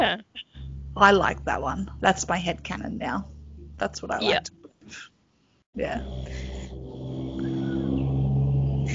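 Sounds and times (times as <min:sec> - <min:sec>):
heavy truck engine rumbling past outside a house: 0:00.5 - 0:04.5, 0:05.8 - 0:08.9
speech: 0:01.0 - 0:05.1, 0:05.8 - 0:06.5.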